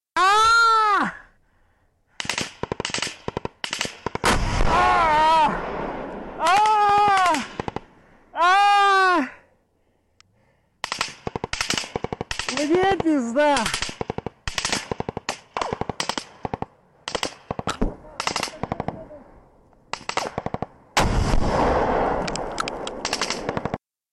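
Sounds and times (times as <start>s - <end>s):
person yelling: 0.2s - 1.3s, 4.6s - 5.6s, 6.4s - 7.5s, 8.3s - 9.5s, 12.5s - 13.7s
gunfire with rapid automatic bursts: 2.2s - 8.0s, 10.8s - 19.2s, 19.9s - 23.8s.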